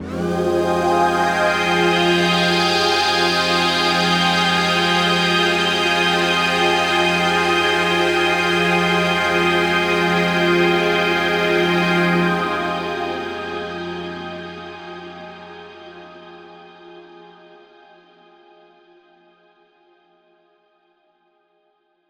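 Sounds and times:
synth pad slide in F: 0:00.0 - 0:15.4.

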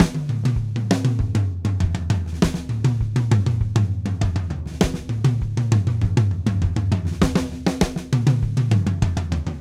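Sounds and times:
drum kit groove: 0:00.0 - 0:09.5.

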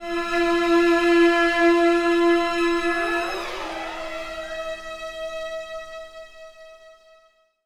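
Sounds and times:
orchestral string accent loops: 0:00.0 - 0:05.7.

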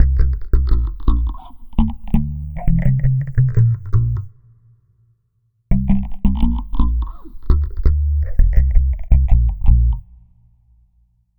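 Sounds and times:
dub electric bass: 0:00.0 - 0:04.3, 0:05.7 - 0:10.3.

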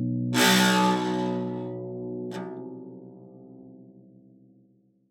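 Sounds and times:
harp note A sharp with pedal: 0:00.4 - 0:01.7.

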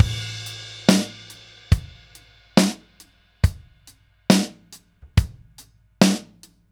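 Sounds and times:
laidback 1970s ballad drum loop: 0:00.0 - 0:06.5.

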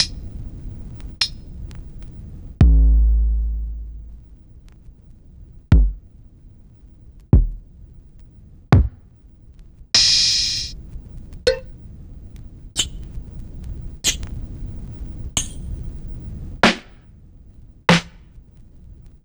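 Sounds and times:
sliced drum kit from vinyl: 0:02.6 - 0:04.4, 0:05.7 - 0:06.0, 0:07.4 - 0:07.7, 0:08.8 - 0:09.0, 0:16.6 - 0:16.9, 0:17.9 - 0:18.2.

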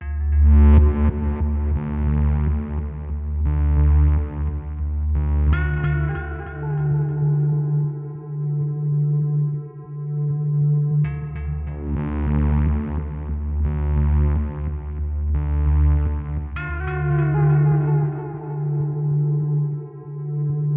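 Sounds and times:
ambience: 0:00.0 - 0:20.7.

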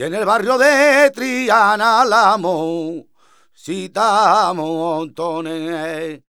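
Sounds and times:
male flamenco cantaor singing: 0:00.0 - 0:06.2.

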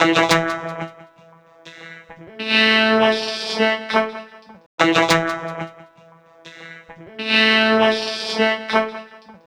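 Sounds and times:
vocoder trip-hop loop: 0:00.0 - 0:04.0, 0:06.4 - 0:09.4.

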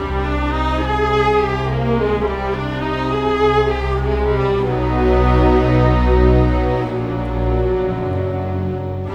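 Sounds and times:
cinematic orchestral strings: 0:00.0 - 0:09.1.

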